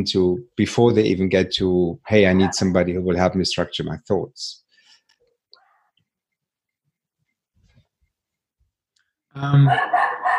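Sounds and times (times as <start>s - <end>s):
speech: 0.0s - 4.6s, 9.4s - 10.0s
dog barking and yowling: 2.4s - 2.7s, 9.5s - 10.3s.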